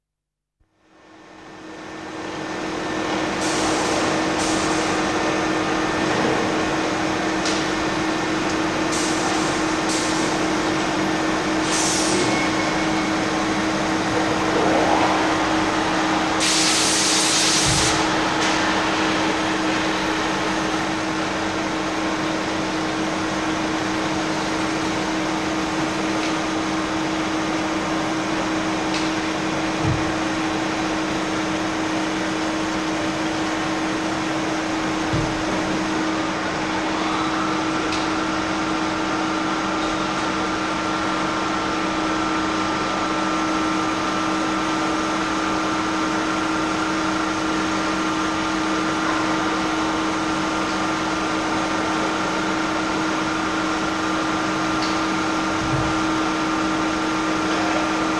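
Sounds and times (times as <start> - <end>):
factory workshop noise: 0.8 - 58.1.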